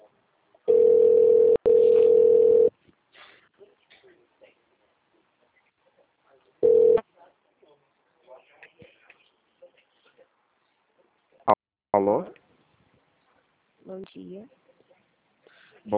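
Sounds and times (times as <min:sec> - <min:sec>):
telephone keypad tones in an automated phone menu: 0:00.7 - 0:02.7
speech: 0:12.0 - 0:12.4, 0:13.9 - 0:14.6.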